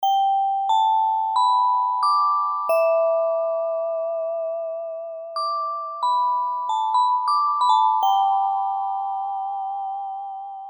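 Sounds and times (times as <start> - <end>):
glockenspiel: 0.0 - 10.6.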